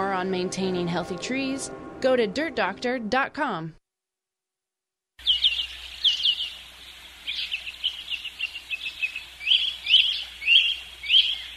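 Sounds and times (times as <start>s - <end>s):
speech: 0.2s - 3.8s
birds chirping and singing: 5.2s - 11.5s.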